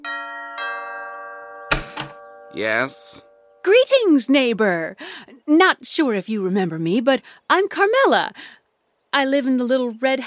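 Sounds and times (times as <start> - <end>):
two-note doorbell chime of a big gray house: 0.0 - 3.6
speech: 2.5 - 10.2.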